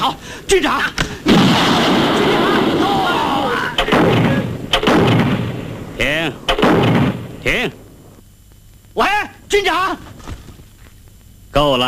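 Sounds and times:
speech: 0.1s - 1.9s, 6.0s - 7.8s, 9.0s - 10.1s, 11.6s - 11.8s
artillery shelling during a wartime assault: 1.2s - 8.0s
sharp heavy artillery blasts: 1.2s - 8.0s.

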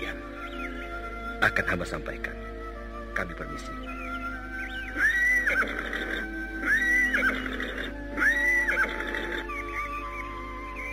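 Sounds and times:
speech: 1.4s - 2.4s, 3.2s - 3.8s
horses neighing as they are led on foot toward a palace gate: 4.8s - 10.2s.

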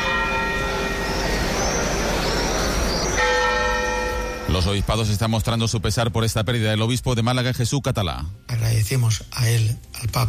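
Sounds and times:
cathedral bells tolling in mourning from the bell tower in Seville: 0.0s - 5.4s
speech: 4.6s - 10.2s.

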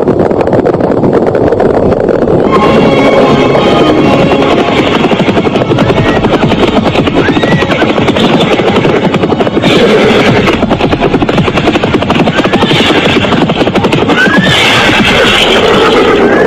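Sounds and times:
rapid rhythmic pounding: 0.0s - 16.4s
horse neighing while being ridden: 14.1s - 16.4s.

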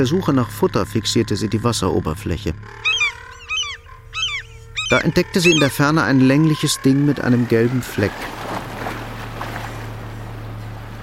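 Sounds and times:
speech: 0.0s - 3.0s, 4.9s - 8.4s
small narrow rowing boat rowed hard across open water: 2.8s - 11.0s.

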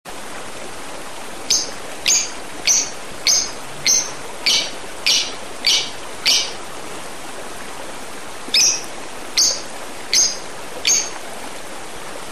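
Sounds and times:
steady hissing background: 0.2s - 12.2s
Oriental magpie-robin repeating crisp high notes: 1.5s - 6.6s, 8.6s - 11.2s.

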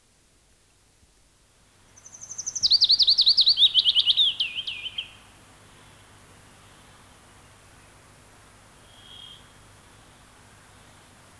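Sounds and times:
Willow Warbler singing in Finland: 2.0s - 5.2s.

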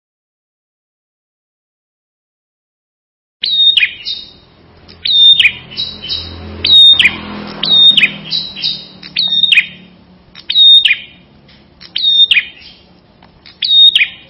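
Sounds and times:
prinia song with sharp high chirped phrases and trilled passages: 3.4s - 14.2s.

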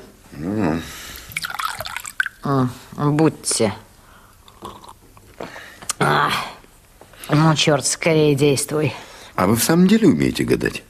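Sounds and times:
water poured into a glass: 1.2s - 2.5s
speech: 2.4s - 3.8s, 7.3s - 10.8s.

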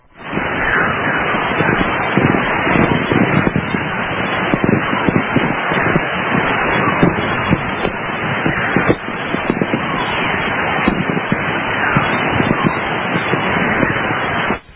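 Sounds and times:
faint flickering pulses: 0.0s - 14.7s
ham radio crackling hiss of magnetic anomalies during a solar storm in Panamint Valley: 0.0s - 14.7s.

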